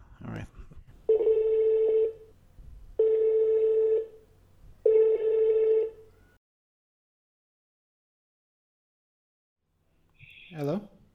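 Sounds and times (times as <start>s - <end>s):
phone line ringing: 1.1s - 2.2s, 3.0s - 4.2s, 4.8s - 6.0s.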